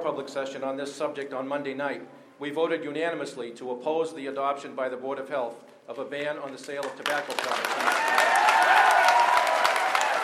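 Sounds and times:
speech: 0.0s - 8.4s
crowd clapping in a large room: 6.5s - 10.2s.

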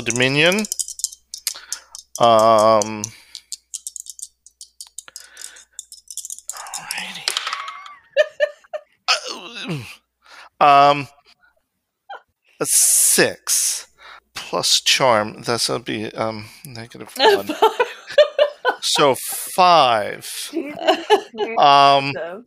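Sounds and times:
speech: 0.0s - 0.8s, 2.2s - 3.2s, 9.7s - 9.9s, 10.6s - 11.2s, 12.6s - 13.9s, 14.5s - 18.2s, 18.8s - 22.4s
dice rattling and clattering: 0.0s - 7.9s
laughter: 7.3s - 8.8s, 17.2s - 19.8s, 20.5s - 21.6s
person groaning and vocalizing loudly: 9.1s - 10.0s.

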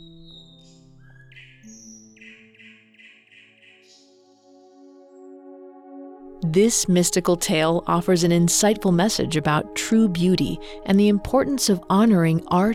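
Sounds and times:
nightingale singing in whistled phrases and trills: 0.0s - 4.2s
soft sustained musical tones: 0.0s - 12.7s
speech: 6.6s - 12.7s.

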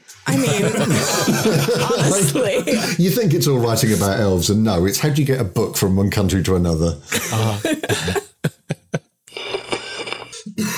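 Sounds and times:
laughter: 0.3s - 3.0s, 7.1s - 9.1s
speech: 0.3s - 8.3s
person in a rough coughing fit: 7.1s - 8.4s, 10.6s - 10.7s.

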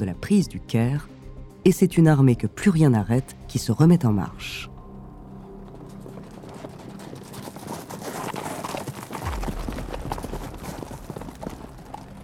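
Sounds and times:
speech: 0.0s - 4.7s
hooves of many Mamluk cavalry horses galloping: 5.4s - 12.2s.

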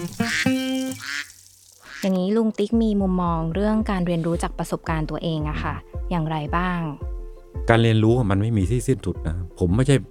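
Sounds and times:
duck quacking: 0.0s - 2.1s
speech: 2.0s - 10.0s.

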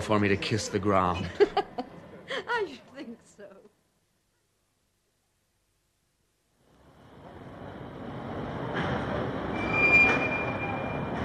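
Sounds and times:
speech: 0.0s - 1.7s
laughter: 0.9s - 2.6s
train rumbling in at a station: 6.8s - 11.2s
thin high-pitched squeal of train wheels or brakes: 9.5s - 11.2s.

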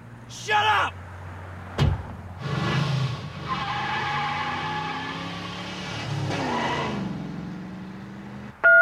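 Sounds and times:
car door opening: 1.8s - 2.2s
sharp clunk: 1.8s - 2.2s
tire squeal: 2.4s - 7.2s.

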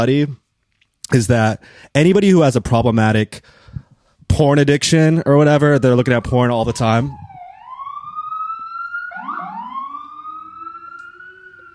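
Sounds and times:
speech: 0.0s - 0.4s, 1.1s - 7.2s
emergency siren wailing: 5.2s - 11.7s.

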